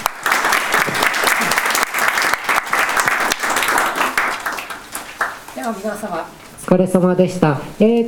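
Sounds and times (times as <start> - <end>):
audience applauding lecturers: 0.0 - 5.5
speech: 5.7 - 8.0.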